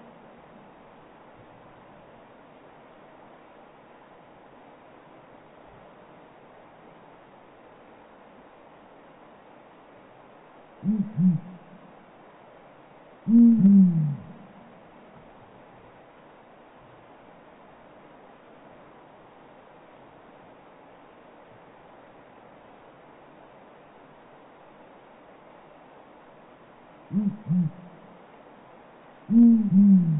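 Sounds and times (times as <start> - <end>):
speech: 10.8 - 11.5
Blakiston's fish owl hooting: 10.8 - 11.9, 13.3 - 14.7, 27.1 - 28.1, 29.3 - 30.1.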